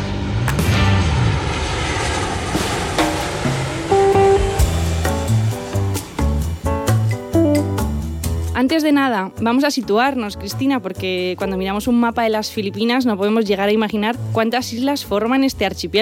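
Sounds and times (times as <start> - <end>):
airplane taking off: 0.0 - 8.5
speech: 8.7 - 16.0.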